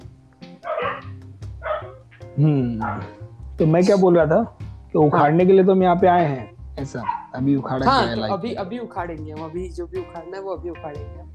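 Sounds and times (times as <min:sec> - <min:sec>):
dog barking: 0:00.6 - 0:02.0, 0:02.8 - 0:03.2, 0:07.0 - 0:07.4
speech: 0:02.4 - 0:11.3.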